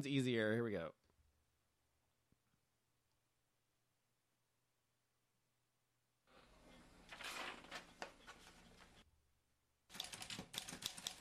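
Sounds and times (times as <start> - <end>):
speech: 0.0 - 1.0
typewriter typing: 9.9 - 11.1.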